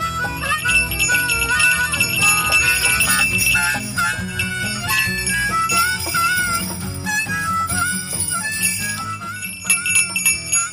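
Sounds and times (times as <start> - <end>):
dense ringing musical backdrop: 0.2 - 10.7
small bell jingling: 0.5 - 10.7.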